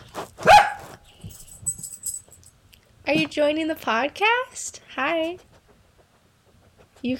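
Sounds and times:
faint noise: 0.0 - 7.1
dog barking: 0.4 - 1.0
speech: 3.1 - 5.5.

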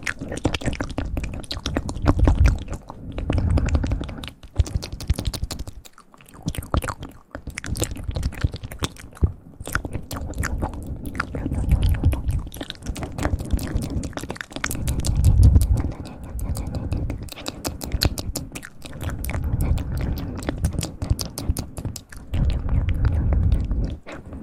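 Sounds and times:
soft low rumble: 0.0 - 24.4
wet ASMR mouth clicks, smacks and chewing-like crackles: 0.0 - 24.4.

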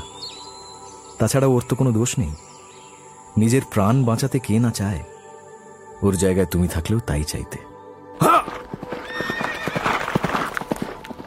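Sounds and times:
speech: 1.2 - 2.6, 3.4 - 5.1, 6.0 - 8.6
horse whinnying: 8.2 - 10.2
horse hooves galloping: 8.2 - 11.2.

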